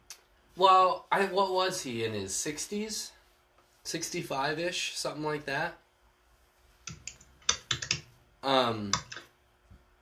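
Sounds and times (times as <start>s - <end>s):
speech: 0.6s - 3.2s, 3.9s - 5.8s, 8.4s - 9.1s
typing on a computer keyboard: 6.9s - 8.1s, 8.9s - 9.3s.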